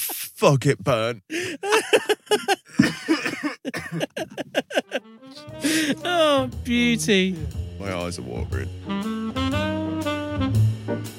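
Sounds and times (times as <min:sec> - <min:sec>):
speech: 0:00.4 - 0:03.0, 0:05.7 - 0:09.8
laughter: 0:01.3 - 0:06.1
person coughing after drink went down wrong: 0:01.6 - 0:04.5.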